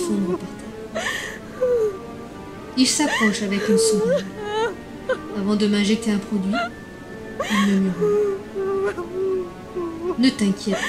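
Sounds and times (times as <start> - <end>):
woman sobbing and whimpering: 0.0 - 2.1, 3.0 - 5.5, 6.5 - 6.8, 7.4 - 10.8
speech: 2.8 - 4.4, 5.4 - 6.8, 7.5 - 9.2, 10.2 - 10.8.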